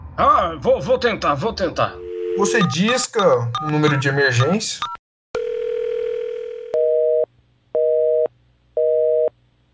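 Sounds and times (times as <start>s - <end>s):
speech: 0.2s - 5.0s
out-of-service busy signal beeping on an old brick-style mobile phone: 1.9s - 4.5s
steady mobile phone tone: 1.9s - 9.7s.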